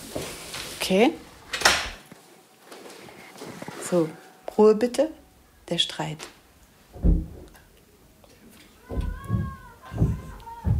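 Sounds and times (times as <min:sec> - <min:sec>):
speech: 0:00.9 - 0:01.3, 0:03.9 - 0:06.4
thuds of a pull-up bar swinging against a wall next door: 0:06.9 - 0:07.5, 0:08.8 - 0:10.7.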